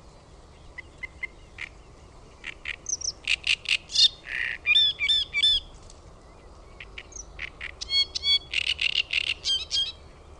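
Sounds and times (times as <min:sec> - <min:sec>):
great reed warbler singing: 0:00.0 - 0:10.3.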